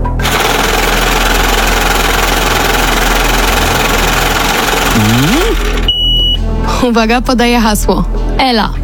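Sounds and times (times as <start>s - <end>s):
lottery drawing machine whirring and rattling: 0.0s - 6.0s
speech: 5.0s - 5.6s, 6.8s - 8.8s.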